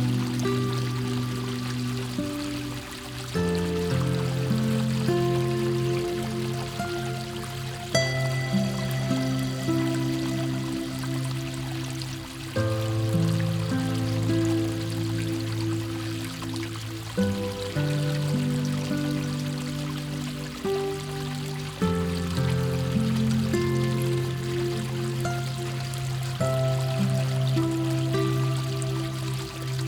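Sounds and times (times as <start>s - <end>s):
faint continuous wash of flowing water: 0.0s - 29.8s
gentle music of slow sustained chords: 0.0s - 29.8s.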